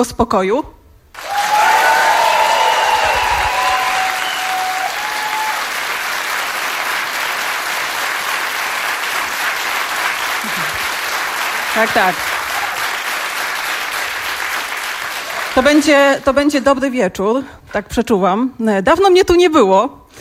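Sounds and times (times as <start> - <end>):
speech: 0.0 - 0.8, 11.8 - 12.4, 15.6 - 20.2
studio audience applause from a full house at a radio-studio event: 1.2 - 15.9.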